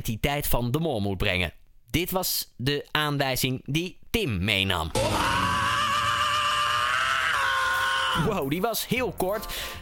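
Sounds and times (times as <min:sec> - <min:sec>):
speech: 0:00.0 - 0:05.4, 0:08.2 - 0:09.8
loud sustained high strained scream from a rock song: 0:04.9 - 0:08.5.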